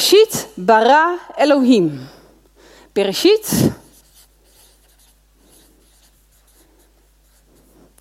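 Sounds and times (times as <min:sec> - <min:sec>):
speech: 0:00.1 - 0:02.2, 0:03.0 - 0:03.8
someone writing a word on a board in Latin letters: 0:03.9 - 0:08.0.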